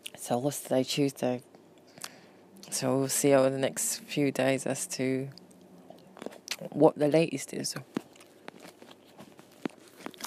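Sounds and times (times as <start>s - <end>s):
speech: 0.3s - 1.5s, 2.8s - 5.4s, 6.6s - 8.0s
person munching grapes: 1.7s - 2.8s, 5.3s - 6.8s, 7.8s - 10.2s.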